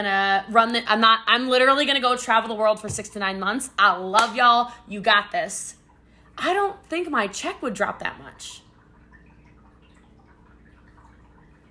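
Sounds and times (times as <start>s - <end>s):
speech: 0.0s - 5.8s, 6.4s - 8.6s
water dripping: 0.5s - 11.6s
low wash of running liquid: 1.0s - 11.6s.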